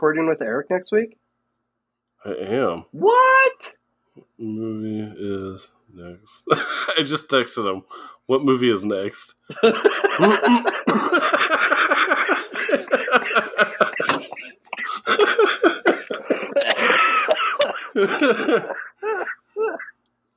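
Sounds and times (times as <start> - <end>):
speech: 0.0 - 1.2, 2.2 - 11.4, 12.6 - 15.7, 18.0 - 20.0
laughter: 9.5 - 19.9
person in a prolonged coughing fit: 10.5 - 11.2, 14.0 - 19.9.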